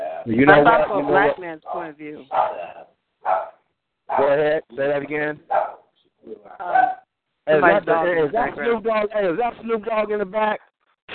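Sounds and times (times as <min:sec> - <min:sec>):
speech: 0:00.2 - 0:03.4, 0:04.2 - 0:05.6, 0:06.2 - 0:10.7
dog barking: 0:00.7 - 0:04.5, 0:05.5 - 0:05.9, 0:06.7 - 0:07.0.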